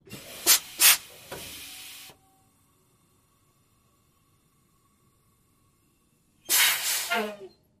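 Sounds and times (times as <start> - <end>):
semi truck air brake: 0.1 - 2.1, 6.4 - 7.4.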